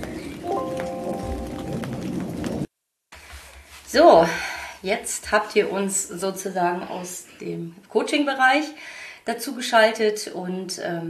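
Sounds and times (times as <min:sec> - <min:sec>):
steady rain pattering on a surface: 0:00.0 - 0:06.0
speech: 0:03.9 - 0:11.0.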